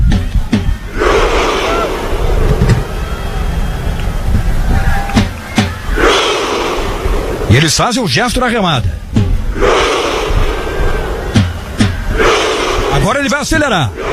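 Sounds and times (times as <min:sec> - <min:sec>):
drum beaten by a player: 0:00.0 - 0:01.0, 0:04.3 - 0:06.7, 0:08.6 - 0:13.5
crowd of Norway supporters roaring and shouting in a stadium: 0:00.0 - 0:14.1
speech: 0:07.6 - 0:09.8, 0:13.0 - 0:14.1.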